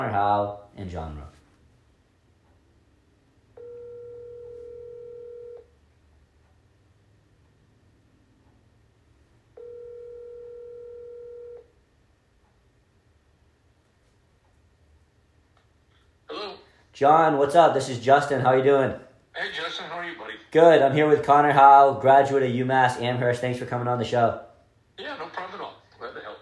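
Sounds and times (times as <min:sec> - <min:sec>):
speech: 0:00.1 - 0:01.4, 0:17.0 - 0:25.7
outgoing phone call ringback tone: 0:03.6 - 0:05.7, 0:09.6 - 0:11.7.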